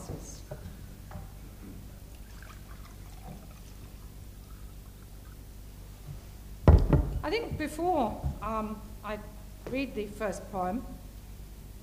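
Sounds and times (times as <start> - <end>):
low hum: 0.0 - 9.5
water poured into a glass: 2.1 - 5.4
speech: 7.3 - 11.0.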